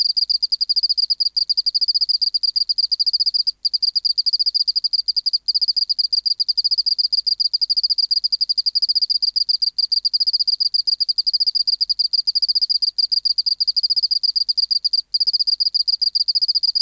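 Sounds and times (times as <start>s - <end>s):
Teleogryllus oceanicus oceanic field cricket calling song: 0.0s - 16.8s.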